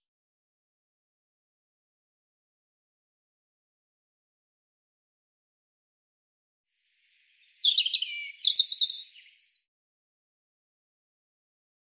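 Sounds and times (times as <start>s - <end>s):
European robin singing: 6.9s - 9.7s.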